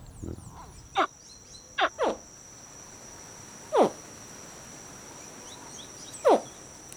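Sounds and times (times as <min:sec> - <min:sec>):
played calls of baby black caimans: 0:00.0 - 0:01.1
ambient night noise: 0:00.0 - 0:06.9
steady hiss of insects: 0:00.0 - 0:06.9.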